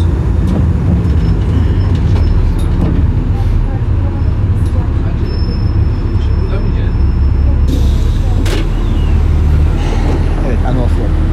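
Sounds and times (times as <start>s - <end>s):
city bus engine rumble: 0.0s - 11.3s
road noise inside a moving city bus: 0.0s - 11.3s
passengers' voices murmuring: 0.2s - 11.3s.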